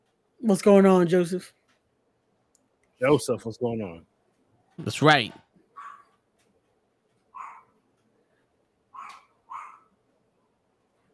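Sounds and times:
speech: 0.4s - 1.6s, 3.0s - 4.1s, 4.8s - 5.4s
dog barking: 5.8s - 6.2s, 7.3s - 7.8s, 8.9s - 9.9s.

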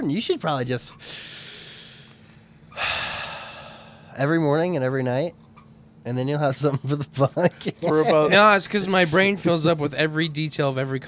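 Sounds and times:
speech: 0.0s - 1.5s, 4.2s - 5.4s, 6.0s - 11.0s
deep slow breathing as a breathing exercise: 1.0s - 4.2s.

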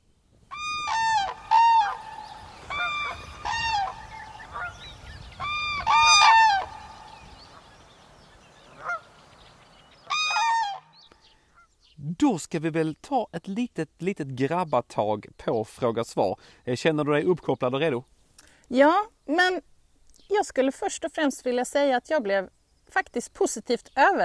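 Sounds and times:
cranes calling in trumpeting duet: 0.5s - 11.7s
speech: 12.2s - 18.1s, 18.7s - 19.7s, 20.3s - 24.2s.

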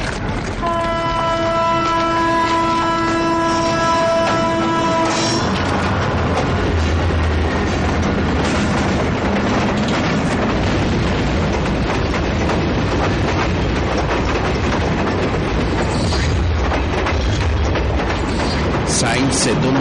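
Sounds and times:
train wheels rumbling and rattling on track: 0.0s - 19.7s
train horn: 0.6s - 5.8s.

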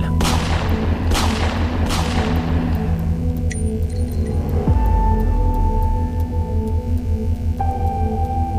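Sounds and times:
low droning musical bed: 0.0s - 8.5s
gunshots with echo: 0.2s - 2.9s.

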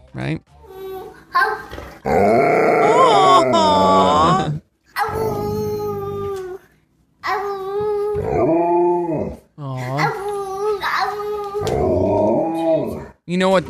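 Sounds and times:
speech: 0.1s - 0.6s, 1.3s - 2.5s, 13.4s - 13.6s
little boy imitating a dog's howl: 2.1s - 6.6s, 7.3s - 13.0s.

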